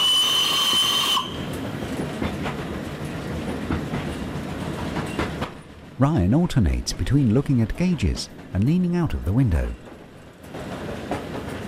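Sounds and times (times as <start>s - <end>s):
train whistle blowing: 0.0s - 1.6s
moving train rumbling and clattering: 0.0s - 11.6s
speech: 6.0s - 9.8s.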